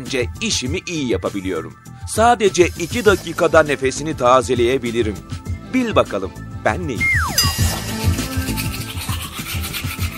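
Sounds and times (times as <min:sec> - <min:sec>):
speech: 0:00.0 - 0:07.4
toothbrush scrubbing teeth: 0:02.7 - 0:03.6, 0:07.6 - 0:10.1.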